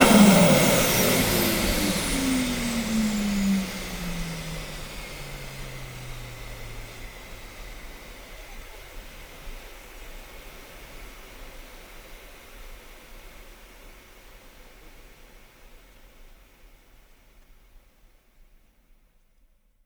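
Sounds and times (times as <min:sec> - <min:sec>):
L-39 jet aircraft engine starting and shutting down: 0:00.0 - 0:12.6.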